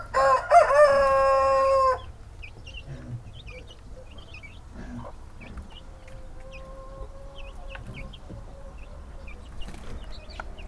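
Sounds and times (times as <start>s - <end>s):
Hungarian-breed rooster crowing with a stuttering start: 0.0s - 2.1s
Hungarian-breed chicks giving quiet high chirps: 1.0s - 10.6s.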